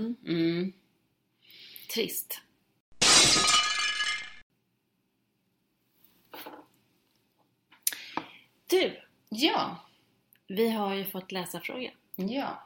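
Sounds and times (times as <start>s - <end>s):
speech: 1.9s - 2.5s, 8.8s - 9.8s, 10.5s - 12.6s
glass shattering: 3.0s - 4.4s.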